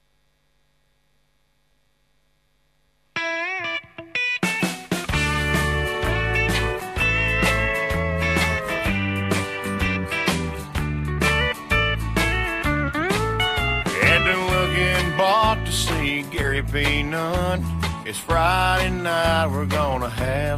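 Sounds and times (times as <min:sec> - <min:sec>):
guitar lead-in: 0:03.2 - 0:20.5
full band playing country song intro: 0:03.4 - 0:20.5
steady pulsing bass rhythm: 0:05.2 - 0:20.5
speech: 0:16.7 - 0:20.5.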